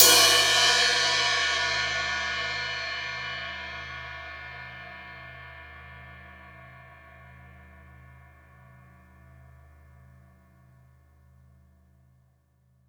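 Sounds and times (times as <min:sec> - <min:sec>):
drum kit crash cymbal: 0:00.0 - 0:06.2.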